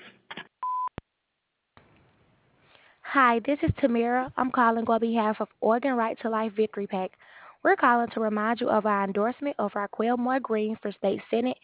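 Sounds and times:
answering machine beep tone: 0:00.6 - 0:00.9
speech: 0:03.1 - 0:11.6.

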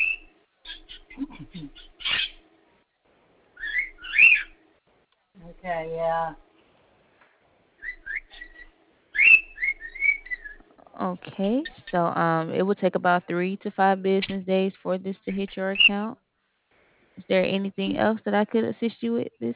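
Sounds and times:
birds chirping and whistling: 0:00.0 - 0:02.4, 0:03.6 - 0:04.6, 0:07.8 - 0:10.6
speech: 0:05.6 - 0:06.5, 0:11.0 - 0:16.2, 0:17.2 - 0:19.5.

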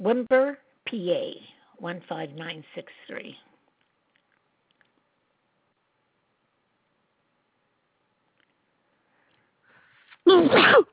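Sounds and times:
speech: 0:00.0 - 0:03.5, 0:10.3 - 0:10.9
loud sneeze: 0:10.1 - 0:10.9.

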